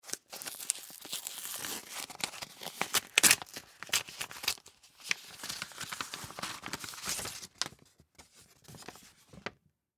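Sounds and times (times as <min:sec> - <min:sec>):
letter seal ripping open in an office: 0:00.1 - 0:07.5
letter paper unfolding: 0:00.1 - 0:09.6.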